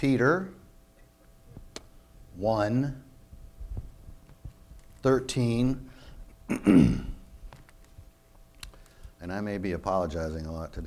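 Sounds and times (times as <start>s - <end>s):
speech: 0.0s - 0.6s, 2.4s - 3.0s, 5.0s - 5.9s, 6.5s - 7.1s, 9.2s - 10.8s
rough throat-clearing cough with gravelly rasp: 6.5s - 7.2s.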